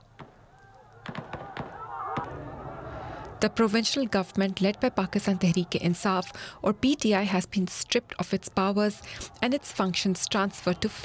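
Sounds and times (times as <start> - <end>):
police gunshots fired to disperse protesters against emergency rule in a northwestern province: 1.0 - 2.6
speech: 3.4 - 11.0.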